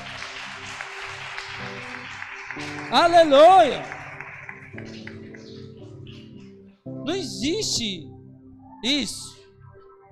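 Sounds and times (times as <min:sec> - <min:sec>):
audience applauding: 0:00.0 - 0:06.3
speech: 0:02.9 - 0:03.9, 0:07.1 - 0:08.1, 0:08.8 - 0:09.4.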